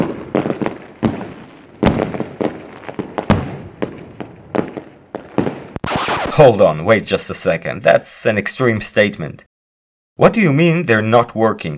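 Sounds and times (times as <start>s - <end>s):
fireworks bursting with sharp loud bangs: 0.0s - 7.0s
speech: 6.4s - 9.5s, 10.2s - 11.7s.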